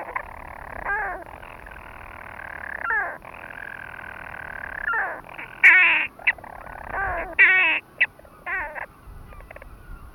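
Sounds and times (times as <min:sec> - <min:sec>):
European storm petrel purring: 0:00.0 - 0:07.8.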